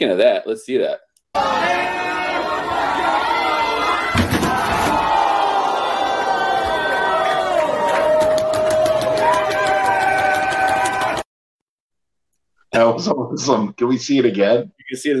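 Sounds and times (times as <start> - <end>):
speech: 0.0 - 2.0, 12.8 - 15.1
loud crowd roaring: 1.4 - 11.3
wrestler piledriven off a half wall through a table: 4.2 - 5.1.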